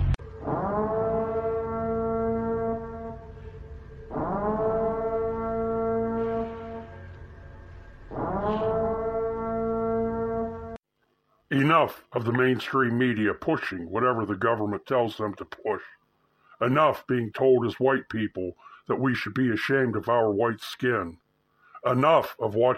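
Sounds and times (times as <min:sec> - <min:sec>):
emergency broadcast siren wailing: 0:00.2 - 0:10.8
speech: 0:11.8 - 0:16.0, 0:16.6 - 0:21.2, 0:21.8 - 0:22.7.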